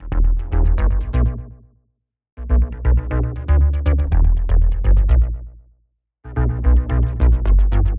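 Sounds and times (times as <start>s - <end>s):
bass loop: 0.0s - 1.6s, 2.4s - 5.5s, 6.3s - 7.9s.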